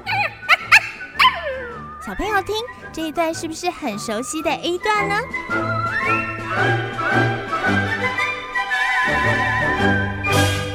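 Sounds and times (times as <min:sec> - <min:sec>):
small frightened dog whimpering on a walk: 0:00.0 - 0:01.9
speech: 0:02.0 - 0:08.3, 0:09.0 - 0:10.5.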